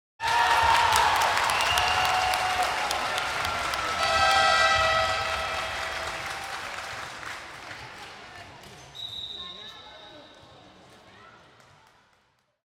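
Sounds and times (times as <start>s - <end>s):
crowd shouting: 0.2s - 6.8s
crowd cheering: 0.2s - 8.2s.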